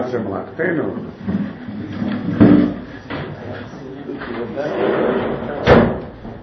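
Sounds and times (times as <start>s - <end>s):
murmuring background with faint voices: 0.0s - 6.4s
speech: 0.1s - 2.7s, 4.4s - 5.6s
door thudding shut: 5.6s - 6.2s.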